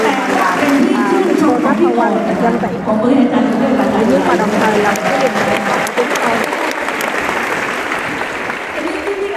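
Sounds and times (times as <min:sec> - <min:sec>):
audience applause: 0:00.0 - 0:02.7, 0:03.8 - 0:09.3
speech: 0:01.8 - 0:05.8.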